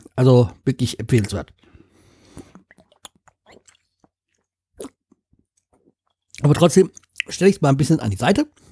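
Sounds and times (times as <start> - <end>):
wet swallows and gulps: 0.0 - 7.4
speech: 0.2 - 1.7, 6.4 - 8.7
person sipping a beverage: 1.1 - 3.8.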